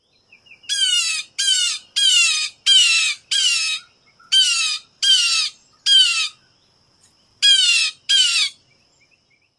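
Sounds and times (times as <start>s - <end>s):
jay calls: 0.7s - 6.4s, 7.4s - 8.6s.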